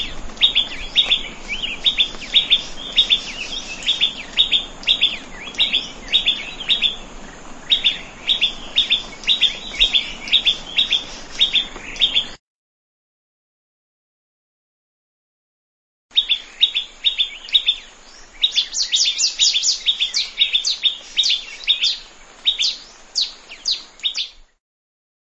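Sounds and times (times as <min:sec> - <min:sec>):
plain prinia chirping in a rice field: 0:00.0 - 0:12.4, 0:16.1 - 0:24.6.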